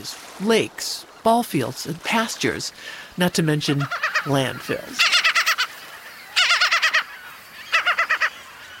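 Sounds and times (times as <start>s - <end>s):
speech: 0.0s - 5.2s
gulls calling in harsh nasal yelps: 1.8s - 8.7s.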